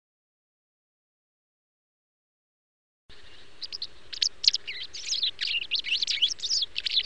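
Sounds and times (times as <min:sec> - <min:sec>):
steady low background noise: 0:03.1 - 0:07.0
white wagtail twittering: 0:03.1 - 0:07.0.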